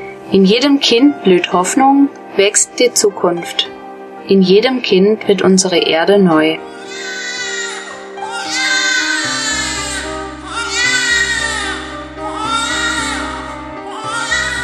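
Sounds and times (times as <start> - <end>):
speech: 0.3 - 3.7, 4.3 - 7.1
newborn baby wailing: 6.7 - 14.6.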